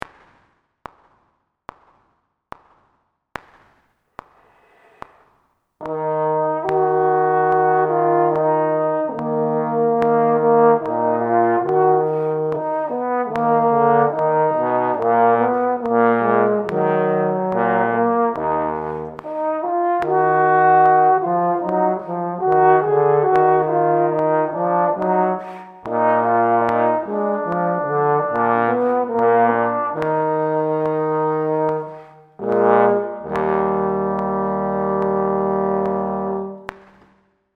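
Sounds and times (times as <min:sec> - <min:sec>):
trombone playing in E-flat minor: 0:05.8 - 0:36.7.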